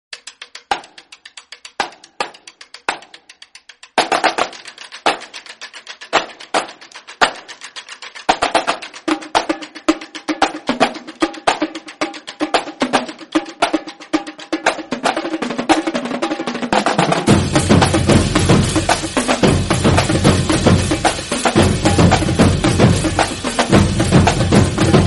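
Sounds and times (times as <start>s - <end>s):
drum interval: 0.2s - 25.0s.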